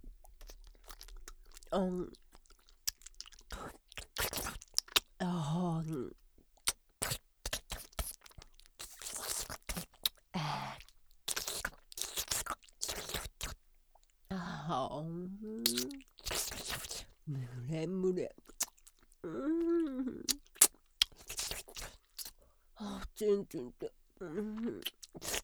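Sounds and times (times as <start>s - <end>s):
crunchy breaded chicken cutlet being chewed: 0.0s - 5.2s, 6.4s - 14.2s, 15.6s - 17.2s, 18.4s - 19.2s, 20.2s - 23.2s, 24.6s - 25.4s
person speaking: 5.2s - 6.2s, 14.3s - 16.0s, 17.0s - 18.5s, 19.2s - 20.4s, 22.8s - 24.9s.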